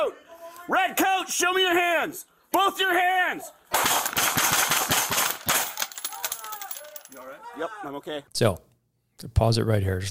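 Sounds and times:
speech: 0:00.0 - 0:03.6, 0:07.1 - 0:10.1
gunfire exchanged between a police officer firing a handgun and a suspect: 0:03.8 - 0:06.4.

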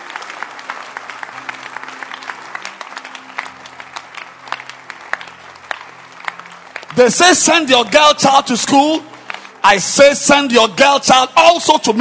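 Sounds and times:
congregation clapping hands to close a church service: 0:00.0 - 0:11.9
speech: 0:07.0 - 0:11.9.

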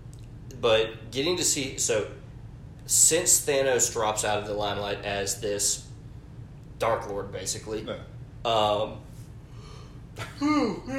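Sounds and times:
speech: 0:00.6 - 0:02.3, 0:02.9 - 0:06.0, 0:06.8 - 0:09.0, 0:10.2 - 0:10.9
person yawning: 0:10.2 - 0:10.9.

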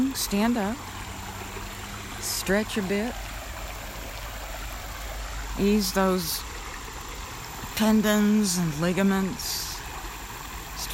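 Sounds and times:
creek water flowing: 0:00.0 - 0:10.9
speech: 0:00.2 - 0:00.9, 0:02.2 - 0:03.2, 0:05.6 - 0:06.5, 0:07.8 - 0:09.7.

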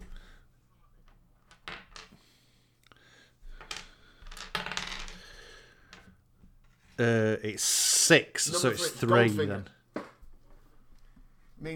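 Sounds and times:
dice rolling on a hard tabletop: 0:01.0 - 0:02.2, 0:03.4 - 0:07.0
speech: 0:07.0 - 0:09.8.

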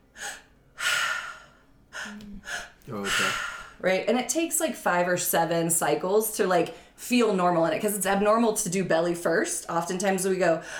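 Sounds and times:
breaths drawn and released through the mouth in a belly, chest, release pattern: 0:00.2 - 0:03.8
speech: 0:02.1 - 0:10.7.

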